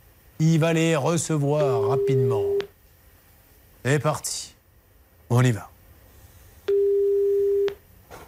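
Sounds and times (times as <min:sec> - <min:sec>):
speech: 0:00.4 - 0:02.7, 0:03.8 - 0:04.6, 0:05.3 - 0:05.7
ringback tone of an outgoing phone call: 0:01.7 - 0:02.7, 0:06.7 - 0:07.8.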